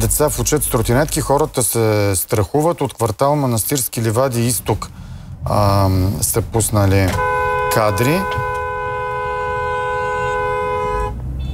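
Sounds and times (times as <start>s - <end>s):
speech: 0.0s - 8.5s
low traffic rumble: 0.0s - 11.5s
car horn honking: 6.9s - 11.5s.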